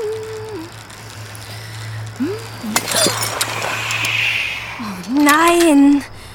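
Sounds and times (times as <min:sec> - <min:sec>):
broken glass shards clinking and crunching on the ground: 0:02.6 - 0:04.8
speech: 0:05.3 - 0:06.1.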